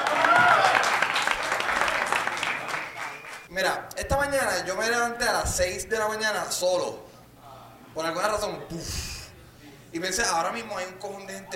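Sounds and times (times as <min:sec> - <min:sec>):
faint voices or cheers: 0:00.0 - 0:03.4
live show audience applause: 0:00.0 - 0:03.5
speech: 0:04.4 - 0:07.1, 0:08.0 - 0:09.0, 0:09.9 - 0:11.5.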